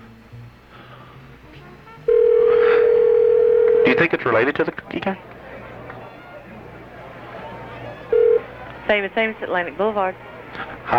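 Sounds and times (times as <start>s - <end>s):
telephone electronic ring tone on an outgoing call: 2.1s - 4.0s, 8.1s - 8.4s
speech: 4.0s - 5.3s, 8.9s - 10.9s.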